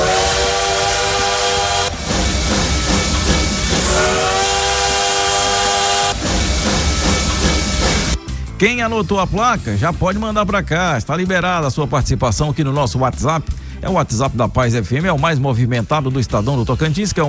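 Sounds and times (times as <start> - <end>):
train engine roaring: 0.0 - 8.2
speech: 8.6 - 17.2.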